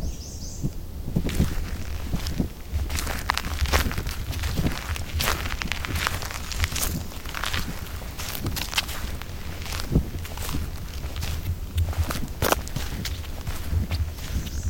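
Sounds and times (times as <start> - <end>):
faint birdsong: 0.0 - 1.1, 14.1 - 14.6
footsteps crunching along a forest trail: 0.6 - 14.6
leaves rustling underfoot: 1.0 - 14.6.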